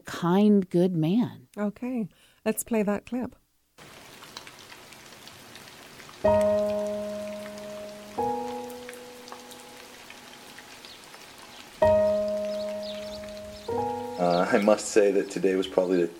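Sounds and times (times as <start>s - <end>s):
speech: 0.2s - 3.9s, 6.2s - 7.0s, 14.5s - 16.1s
steady rain pattering: 3.8s - 16.1s.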